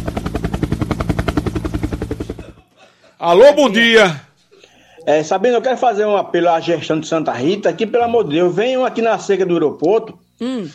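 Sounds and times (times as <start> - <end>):
helicopter rotor chopping overhead above the Jaguaribe, Cristo and Vajão area: 0.0 - 2.6
speech: 3.2 - 4.3, 5.0 - 10.7.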